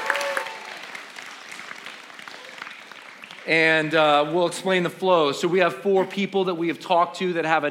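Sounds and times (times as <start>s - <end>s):
audience clapping: 0.0s - 4.4s
speech: 3.4s - 7.6s.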